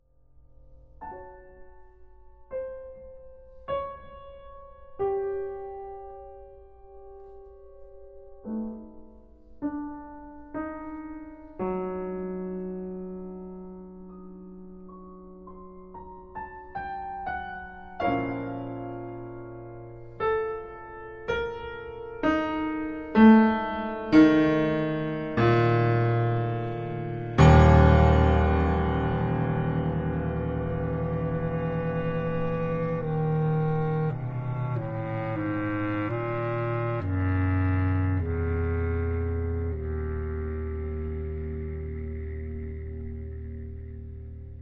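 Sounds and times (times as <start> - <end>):
piano: 0.0 - 44.5
B flat bass clarinet: 25.4 - 44.5.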